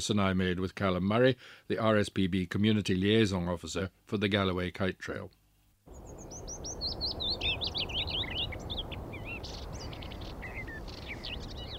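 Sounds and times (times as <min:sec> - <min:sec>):
speech: 0:00.0 - 0:05.4
outdoor noise: 0:00.0 - 0:11.7
other birds chirping softly: 0:05.9 - 0:11.7
willow warbler singing: 0:05.9 - 0:11.7.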